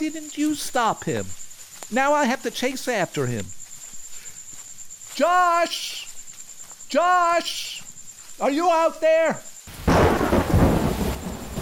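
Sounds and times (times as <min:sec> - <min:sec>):
speech: 0:00.0 - 0:03.6, 0:05.2 - 0:06.0, 0:06.9 - 0:07.8, 0:08.4 - 0:10.4
steady hiss of falling rain: 0:09.7 - 0:11.6
loud rumble of thunder: 0:09.8 - 0:11.6.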